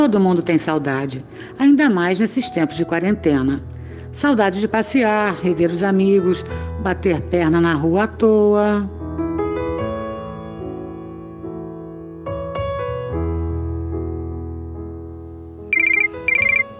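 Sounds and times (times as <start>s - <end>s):
speech: 0.0s - 9.0s
soft piano-like music: 0.0s - 16.7s
mobile phone ringtone with bright electronic bursts: 15.8s - 16.7s.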